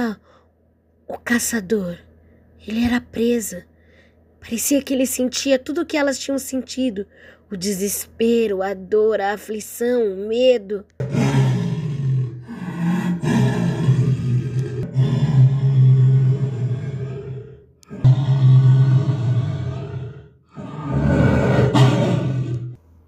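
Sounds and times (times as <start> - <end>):
speech: 0.0 - 0.3, 1.1 - 3.7, 4.4 - 11.3
jaguar roaring: 11.0 - 22.8.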